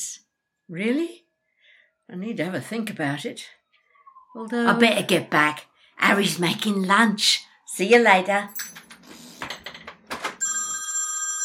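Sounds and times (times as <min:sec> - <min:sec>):
speech: 0:00.7 - 0:01.2, 0:02.1 - 0:03.6, 0:04.4 - 0:08.8
telephone ringing with a steady electronic tone: 0:10.4 - 0:11.4.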